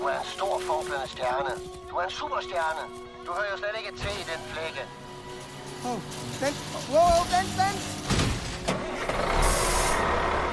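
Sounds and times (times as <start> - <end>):
speech: 0.2 - 5.0, 5.7 - 8.0, 9.2 - 10.2
truck with trailer driving away: 7.4 - 10.5.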